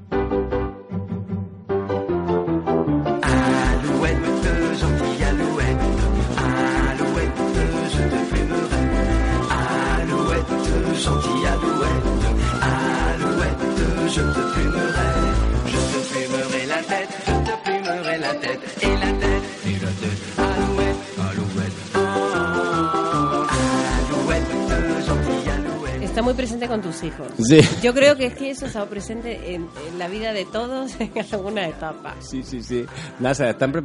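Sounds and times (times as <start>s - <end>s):
full-band song with drums, bass and layered melodic instruments: 0.1s - 26.7s
speech: 26.3s - 33.8s
laughter: 27.4s - 28.9s, 30.8s - 31.7s.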